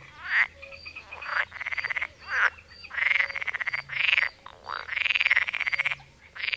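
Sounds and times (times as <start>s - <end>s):
Pool frog Pelophylax lessonae croaking: 0.0s - 6.5s.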